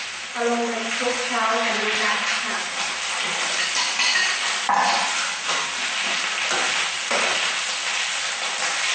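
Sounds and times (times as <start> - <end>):
mushrooms stir-frying in a pan: 0.0 - 8.9
speech: 0.4 - 3.4
scraping stirs in a pan: 2.3 - 7.5.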